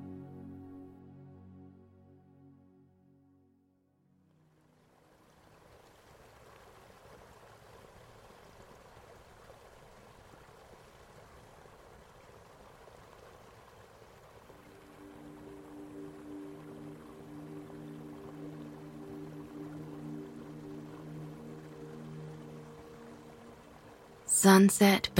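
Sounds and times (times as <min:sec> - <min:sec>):
soft sustained tonal drone: 0:00.0 - 0:05.2, 0:14.5 - 0:25.1
river flowing through a little valley on a crisp winter evening: 0:04.8 - 0:24.3
speech: 0:24.4 - 0:25.1.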